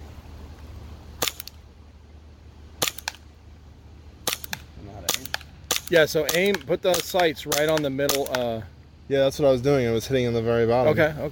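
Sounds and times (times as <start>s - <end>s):
low steady hum: 0.0s - 11.3s
HPA airsoft pistol shooting: 1.2s - 1.6s, 2.8s - 3.2s, 4.2s - 8.4s
speech: 5.9s - 11.3s.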